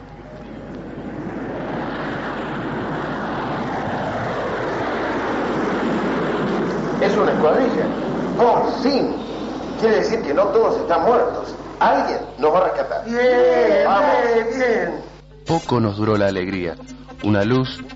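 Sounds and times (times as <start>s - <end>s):
airplanes flying overhead: 0.0s - 13.1s
speech: 7.4s - 17.9s.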